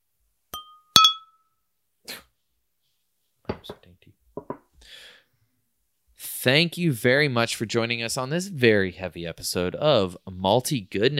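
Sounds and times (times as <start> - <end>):
beer glasses clinking in a toast: 0.5 - 1.4
soft breathy sound: 4.8 - 5.7
speech: 6.4 - 11.1.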